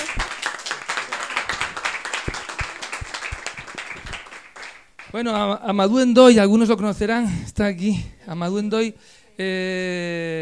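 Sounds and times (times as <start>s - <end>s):
audience applauding at a public talk: 0.0s - 5.1s
speech: 5.1s - 10.4s.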